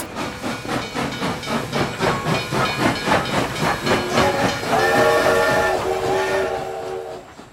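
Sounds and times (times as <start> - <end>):
steam locomotive chuffing: 0.0 - 7.5
sustained whistle-like tone over the running steam train: 3.9 - 7.4.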